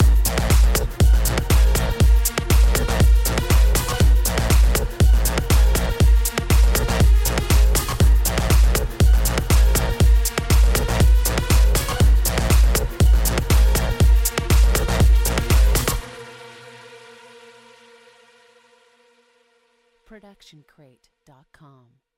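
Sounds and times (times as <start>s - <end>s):
trance beat logo ident: 0.0s - 16.3s.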